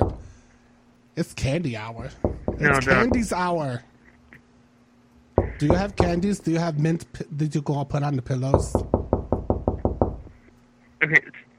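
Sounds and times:
knocking on a door: 0.0s - 0.3s, 2.2s - 3.4s, 5.4s - 6.4s, 8.5s - 10.4s
speech: 1.2s - 3.9s, 5.6s - 9.0s.

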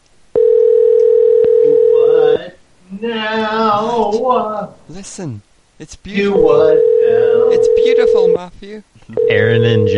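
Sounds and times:
electronic telephone ringing tone: 0.4s - 2.4s, 6.4s - 8.4s, 9.2s - 9.9s
speech: 4.1s - 6.8s, 7.6s - 9.9s.

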